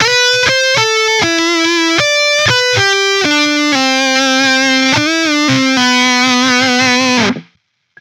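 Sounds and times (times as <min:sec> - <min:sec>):
guitar solo: 0:00.0 - 0:07.4.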